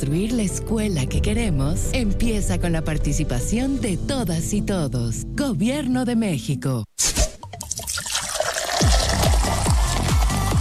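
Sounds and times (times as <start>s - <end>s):
speech: 0.0s - 6.8s
soda bottle opening with a quick fizzy rush: 7.0s - 10.6s
soda pouring in steady rhythmic glugs: 7.4s - 10.6s.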